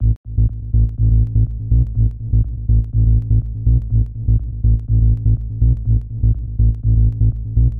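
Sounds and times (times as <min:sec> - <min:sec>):
tech house bass loop: 0:00.0 - 0:07.7.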